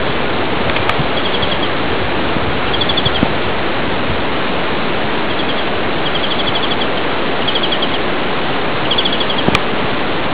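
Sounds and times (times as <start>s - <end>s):
steady broadband hiss: 0.0s - 10.3s
European greenfinch singing short fast trills: 1.0s - 1.8s, 2.6s - 3.3s, 5.2s - 8.1s, 8.8s - 9.6s.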